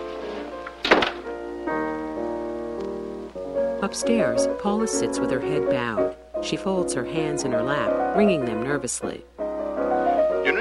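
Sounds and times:
sustained tonal background: 0:00.0 - 0:10.6
door closing behind people leaving a room: 0:00.1 - 0:01.3
speech: 0:03.8 - 0:09.3.

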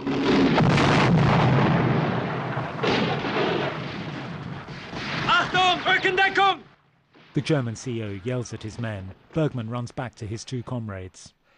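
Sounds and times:
tank exploding from a satchel charge on its chassis: 0:00.0 - 0:06.4
speech: 0:06.0 - 0:06.6, 0:07.4 - 0:11.4.

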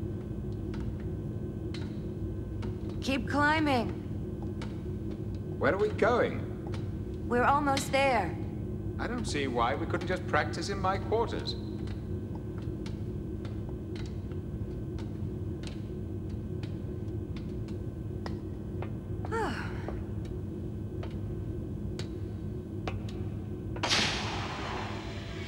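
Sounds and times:
steady low hum: 0:00.0 - 0:25.4
speech: 0:03.0 - 0:04.0, 0:05.6 - 0:06.5, 0:07.3 - 0:08.4, 0:09.0 - 0:11.7
heavy steel door slamming shut over a ladder: 0:23.8 - 0:25.4.

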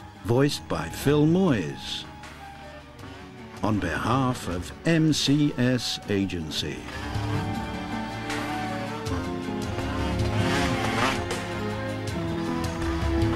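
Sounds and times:
speech: 0:00.2 - 0:02.1, 0:03.6 - 0:07.2
trail bike engine droning over rough terrain: 0:06.9 - 0:13.3.

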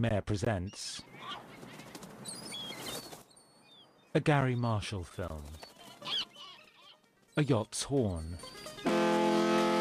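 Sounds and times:
speech: 0:00.0 - 0:01.4, 0:04.2 - 0:06.2, 0:07.4 - 0:09.0
seagulls calling with thin high calls: 0:01.0 - 0:03.8, 0:05.6 - 0:07.0
seagulls taking flight flapping wings: 0:01.2 - 0:03.3, 0:05.2 - 0:07.0.

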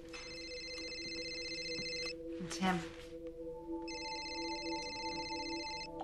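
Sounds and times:
mobile phone ringing with electronic trill: 0:00.1 - 0:02.2, 0:03.9 - 0:06.0
speech: 0:02.4 - 0:03.0.

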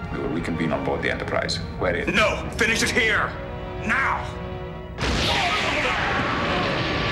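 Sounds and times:
speech: 0:00.1 - 0:04.4
explosion: 0:05.0 - 0:07.0
roaring wash of debris-like noise: 0:05.0 - 0:07.0.

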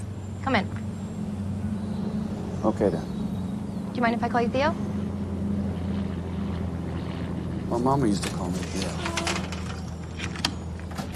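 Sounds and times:
steady low hum: 0:00.0 - 0:11.1
speech: 0:00.4 - 0:00.8, 0:02.6 - 0:03.2, 0:04.0 - 0:04.9, 0:07.7 - 0:09.4
front door opening with a click and scraping sweep: 0:08.2 - 0:11.1.

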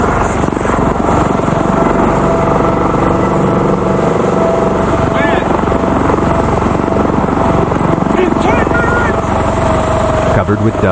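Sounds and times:
two military helicopters rotor thumping: 0:00.0 - 0:10.8
speech: 0:10.5 - 0:10.8.

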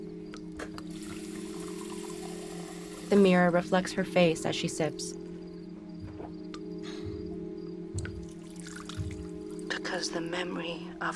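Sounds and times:
constant low hum: 0:00.0 - 0:11.1
water running from a bathroom sink tap into a glass: 0:00.9 - 0:03.2, 0:08.2 - 0:09.6
speech: 0:03.1 - 0:05.2, 0:10.0 - 0:11.1.

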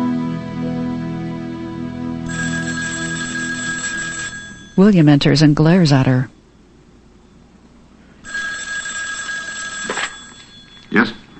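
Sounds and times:
home telephone ringing with electronic trill: 0:02.3 - 0:06.3, 0:08.2 - 0:11.3
speech: 0:04.8 - 0:06.4.

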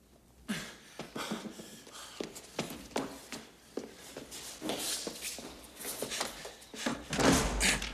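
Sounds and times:
footsteps: 0:01.0 - 0:07.7
door closing: 0:07.0 - 0:07.9.

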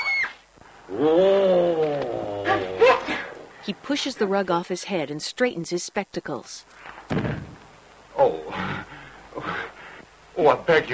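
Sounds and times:
speech: 0:00.9 - 0:01.4, 0:03.6 - 0:07.5, 0:10.4 - 0:10.9
man in a bear skin growling like a bear: 0:00.9 - 0:03.3, 0:08.2 - 0:09.7.

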